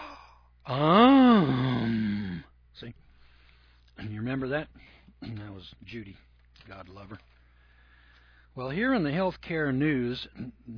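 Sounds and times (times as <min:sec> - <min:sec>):
person imitating a gasp with a drawn-out voiced cry: 0:00.0 - 0:02.5
speech: 0:00.7 - 0:01.0, 0:04.4 - 0:07.3, 0:08.6 - 0:10.7.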